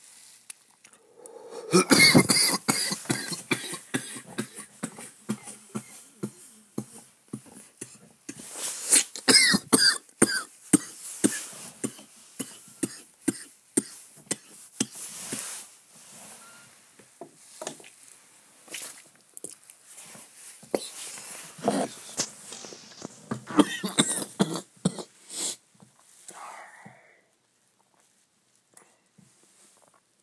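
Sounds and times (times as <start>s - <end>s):
throaty rasps: 0.9s - 2.5s
person in a prolonged fit of harsh coughing: 1.2s - 6.0s, 8.9s - 14.5s, 23.5s - 25.2s.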